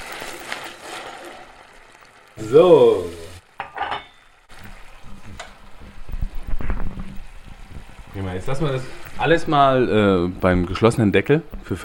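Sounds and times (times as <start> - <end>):
stirring and scraping in a pan: 0.0 - 2.3, 3.5 - 9.4
vegetable broth sizzling in a pan while deglazing: 0.0 - 11.7
speech: 2.4 - 3.2, 8.4 - 11.8.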